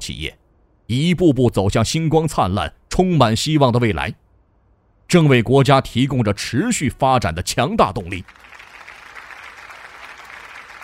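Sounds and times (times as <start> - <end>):
speech: 0.0 - 4.2, 5.1 - 8.6
crowd applauding after a speech at a ceremony: 8.2 - 10.8.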